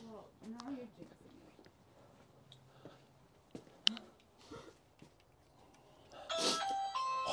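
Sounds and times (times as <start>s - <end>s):
doorbell ringing: 6.3s - 7.3s.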